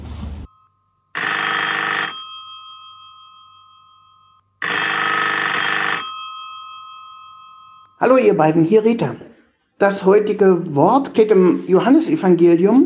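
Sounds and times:
telephone ringing for an incoming call: 0.4s - 8.0s
speech: 8.0s - 12.8s.

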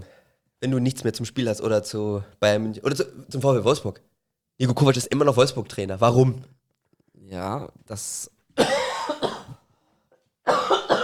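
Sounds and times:
speech: 0.6s - 6.6s, 7.3s - 9.4s
person coughing harshly: 8.6s - 9.6s, 10.5s - 11.0s.

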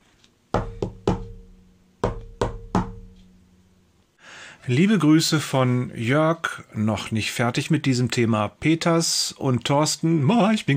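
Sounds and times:
firm knocking on a wooden door: 0.6s - 3.2s
speech: 4.7s - 10.7s.

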